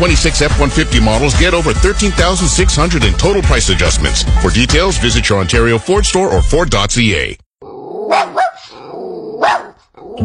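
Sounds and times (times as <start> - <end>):
speech: 0.0 - 7.4
puppy barking: 8.0 - 9.9.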